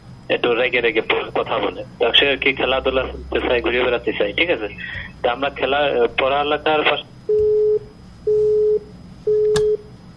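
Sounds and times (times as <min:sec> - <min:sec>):
speech: 0:00.3 - 0:07.4
telephone busy tone after a call is cut off: 0:07.4 - 0:09.9.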